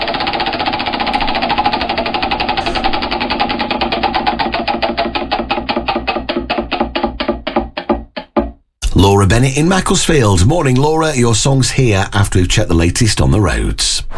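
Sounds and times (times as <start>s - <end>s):
lottery wheel spinning with ratcheting clicks: 0.0s - 7.9s
speech: 9.2s - 14.0s.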